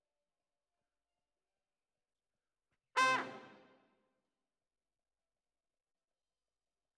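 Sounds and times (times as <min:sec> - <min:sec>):
trumpet: 0:03.0 - 0:03.8.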